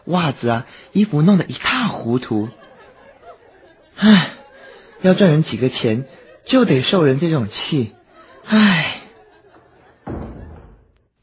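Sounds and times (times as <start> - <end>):
laughter: 0.0 - 11.0
speech: 0.1 - 2.6, 4.0 - 4.4, 5.0 - 9.0
door shutting with heavy thud: 10.0 - 11.1.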